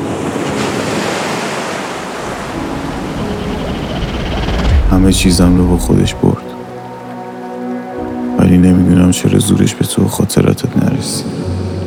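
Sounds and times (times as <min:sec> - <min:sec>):
heavy sea surf waves crashing and churning: 0:00.0 - 0:08.3
gusty wind buffeting the microphone: 0:02.3 - 0:06.3
speech: 0:04.9 - 0:06.4, 0:08.5 - 0:11.5.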